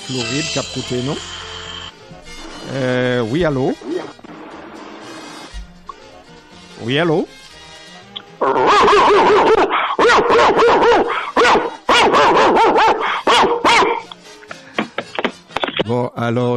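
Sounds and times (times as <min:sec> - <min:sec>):
speech: 0:00.1 - 0:01.4, 0:02.7 - 0:03.9, 0:06.8 - 0:07.4, 0:08.4 - 0:09.6, 0:15.9 - 0:16.5
dog barking with high yelping barks: 0:08.4 - 0:14.1.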